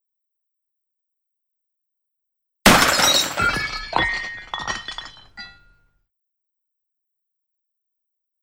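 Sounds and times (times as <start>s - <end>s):
window pane smashing: 2.7s - 5.6s
glass shards tinkling and scattering: 2.7s - 5.7s.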